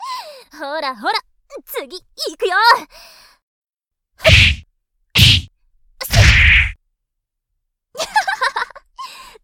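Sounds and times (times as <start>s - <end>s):
speech: 0.6s - 1.2s, 1.8s - 3.0s
heavy punch impacts landing on a person: 4.2s - 4.6s, 5.2s - 6.8s.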